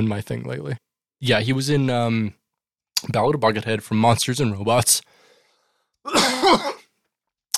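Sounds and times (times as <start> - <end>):
speech: 0.0 - 2.4, 3.0 - 5.1, 6.0 - 6.8
harsh raspy cough-like throat clearing: 6.1 - 7.0.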